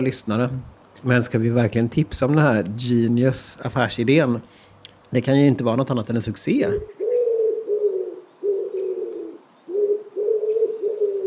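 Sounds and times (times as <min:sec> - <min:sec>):
speech: 0:00.0 - 0:07.0
dove cooing in low throaty phrases: 0:06.8 - 0:11.2.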